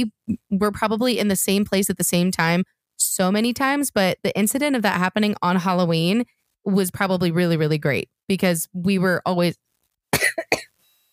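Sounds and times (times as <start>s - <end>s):
speech: 0.0s - 9.7s
person coughing dryly: 10.2s - 10.7s.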